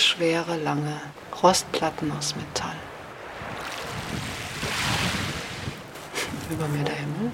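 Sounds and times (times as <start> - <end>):
speech: 0.2 - 2.8, 6.5 - 7.3
wind buffeting the microphone: 2.2 - 7.3
sea water churning and swirling against rocks: 3.4 - 5.9.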